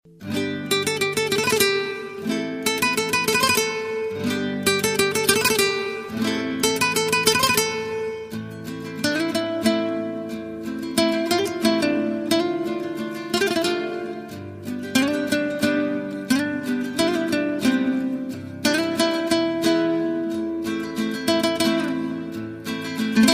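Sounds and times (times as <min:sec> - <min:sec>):
guitar playing: 0:00.1 - 0:23.3.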